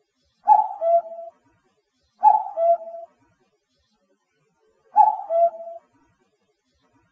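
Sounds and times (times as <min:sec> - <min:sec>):
common cuckoo calling: 0:00.4 - 0:01.3, 0:02.2 - 0:03.1, 0:05.0 - 0:05.9.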